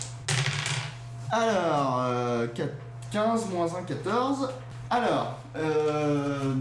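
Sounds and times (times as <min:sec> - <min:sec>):
twenty-sided die and six-sided die clattering across a tabletop: 0:00.3 - 0:01.0
speech: 0:01.3 - 0:06.5.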